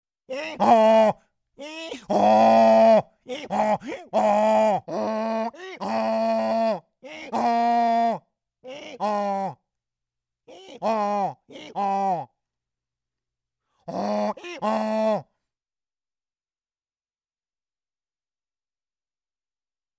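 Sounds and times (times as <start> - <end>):
demi-human grunt: 0.3 - 9.6, 10.5 - 12.3, 13.9 - 15.3.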